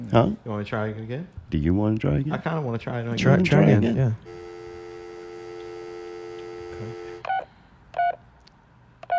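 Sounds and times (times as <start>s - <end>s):
speech: 0.1s - 4.5s
telephone dial tone: 4.4s - 7.4s.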